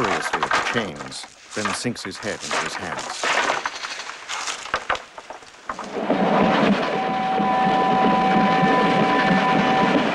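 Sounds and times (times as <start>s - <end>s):
speech: 0.7s - 3.6s
gusting wind: 5.1s - 10.1s
train roaring along the tracks: 5.7s - 10.1s
thin high whining tones: 5.8s - 10.1s.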